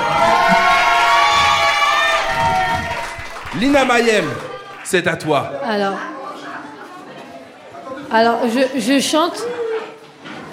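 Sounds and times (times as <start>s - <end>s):
high-pitched children's screams: 0.0s - 3.4s
large crowd shouting and cheering: 0.0s - 6.4s
speech: 3.6s - 6.1s, 8.1s - 9.6s.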